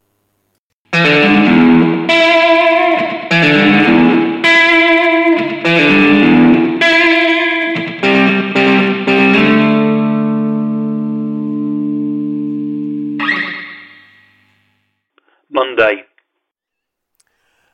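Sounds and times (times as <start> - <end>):
bright jangly electric guitar strumming rhythmic chords: 0.9 - 14.4.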